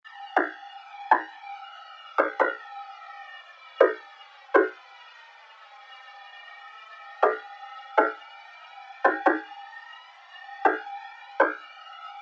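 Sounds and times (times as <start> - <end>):
percussion effects loop: 0.4 - 1.4, 2.2 - 2.6, 3.8 - 4.0, 4.6 - 4.8, 7.2 - 8.2, 9.0 - 9.5, 10.6 - 11.6.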